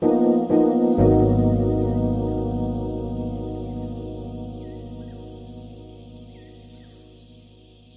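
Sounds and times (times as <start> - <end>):
chill electric piano seventh chords: 0.0 - 7.9.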